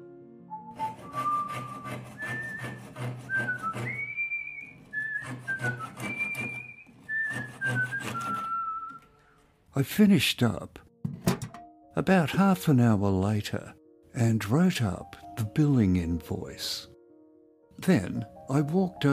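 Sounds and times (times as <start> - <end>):
man whistling a tune while working in a backyard wood shop: 0.5 - 9.2
speech: 9.8 - 10.8, 12.0 - 16.9, 17.8 - 19.1.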